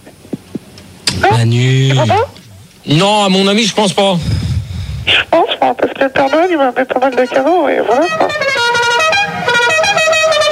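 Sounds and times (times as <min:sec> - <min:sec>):
speech: 0:01.4 - 0:04.4, 0:05.1 - 0:08.5
truck horn blaring with a brassy tone: 0:06.2 - 0:10.5.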